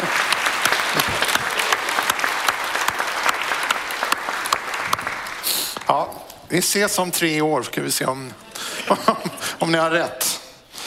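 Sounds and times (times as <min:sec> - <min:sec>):
audience applause: 0:00.0 - 0:05.9
speech: 0:05.9 - 0:10.3
laughter: 0:08.4 - 0:09.7.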